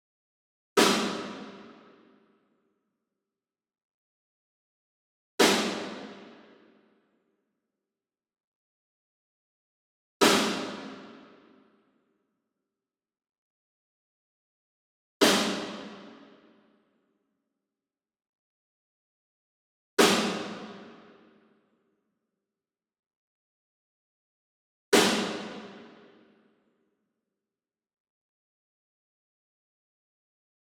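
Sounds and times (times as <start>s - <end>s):
Pearl high-tension snare drum rim hit: 0.8s - 1.7s, 5.4s - 6.3s, 10.2s - 11.2s, 15.2s - 16.2s, 20.0s - 21.0s, 25.0s - 26.0s.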